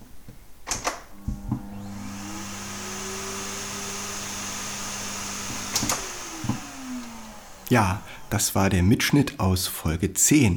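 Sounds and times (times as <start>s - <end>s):
vacuum cleaner motor hum and whine: 1.1s - 9.4s
vacuum cleaner switch click: 5.1s - 8.1s
speech: 7.7s - 10.5s.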